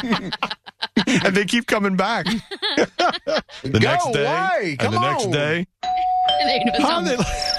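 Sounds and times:
laughter: 0:00.0 - 0:04.2
speech: 0:00.0 - 0:05.7, 0:06.4 - 0:07.5
doorbell ringing with a sustained electronic tone: 0:05.8 - 0:07.5.

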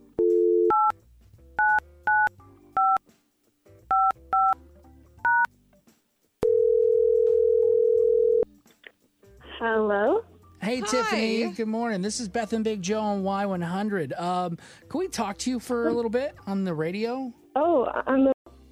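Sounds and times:
telephone dial tone: 0:00.2 - 0:00.9, 0:06.4 - 0:08.5
touch-tone keypad beeps: 0:00.2 - 0:00.9, 0:01.6 - 0:03.0, 0:03.9 - 0:04.6, 0:05.3 - 0:05.5
speech: 0:10.7 - 0:18.4.

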